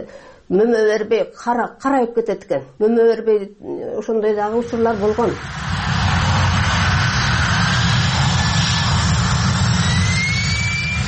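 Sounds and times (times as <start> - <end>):
speech: 0.0 - 5.9
faint jet engine whine: 4.5 - 11.0
jet airplane passing low over a village beside an airport runway: 4.5 - 11.0.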